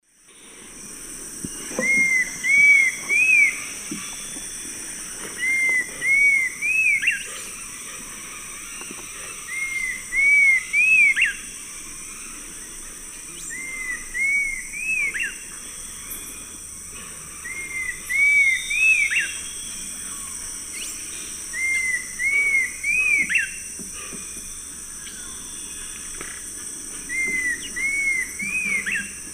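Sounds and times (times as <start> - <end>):
Attila cinnamomeus song in the Eastern Lowlands of South America: 1.4 - 29.3.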